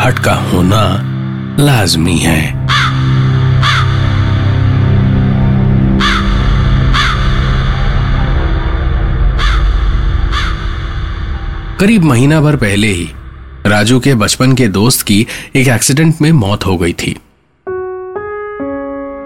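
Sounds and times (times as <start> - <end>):
speech: 0.0 - 3.0, 11.8 - 17.2
crow cawing: 2.6 - 4.8, 5.9 - 8.4, 9.2 - 11.5
steady low hum: 3.0 - 14.6.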